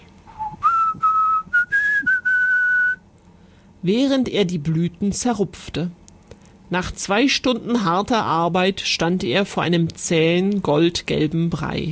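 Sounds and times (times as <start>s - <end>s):
person whistling a short tune: 0.3s - 3.0s
speech: 3.8s - 6.0s, 6.7s - 11.9s.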